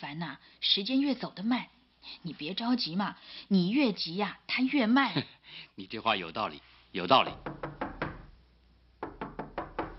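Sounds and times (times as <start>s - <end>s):
speech: 0.0s - 7.7s
knocking on a door: 7.3s - 8.3s, 9.0s - 9.9s.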